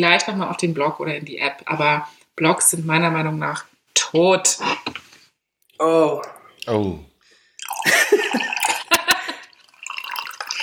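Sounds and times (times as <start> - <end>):
speech: 0.0 - 4.9, 5.8 - 7.1
water pouring into a cup: 7.6 - 10.6
laughter: 7.8 - 9.5.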